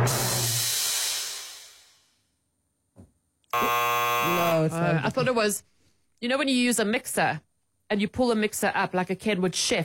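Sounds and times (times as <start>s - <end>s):
broad hiss: 0.1s - 2.1s
loud low harsh game show wrong-answer buzzer: 3.5s - 4.7s
speech: 4.9s - 9.8s.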